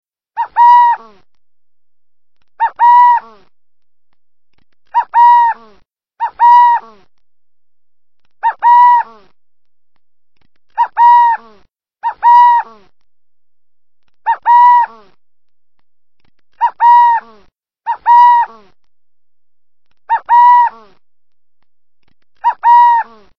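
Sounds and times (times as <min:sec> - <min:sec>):
Western burrowing owl calling: 0:00.4 - 0:01.2, 0:02.6 - 0:03.5, 0:04.9 - 0:07.1, 0:08.4 - 0:09.3, 0:10.7 - 0:12.9, 0:14.2 - 0:15.2, 0:16.6 - 0:18.8, 0:20.1 - 0:21.0, 0:22.4 - 0:23.3.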